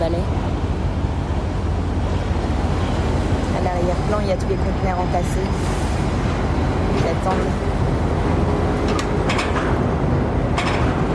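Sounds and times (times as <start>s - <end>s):
heavy container truck engine rumbling across an open port quay: 0.0s - 11.1s
speech: 4.3s - 5.8s
clanks: 8.8s - 9.9s, 10.5s - 11.1s.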